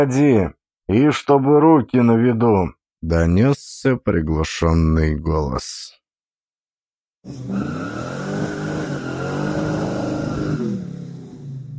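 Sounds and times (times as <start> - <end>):
speech: 0.0 - 6.0, 7.2 - 8.6
car engine revving as the car accelerates and swerves into a side street: 7.3 - 11.7.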